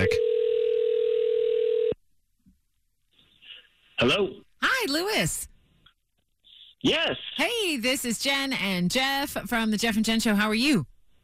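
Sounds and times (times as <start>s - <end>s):
telephone dial tone: 0.1s - 2.0s
speech: 4.0s - 5.5s, 6.8s - 10.9s.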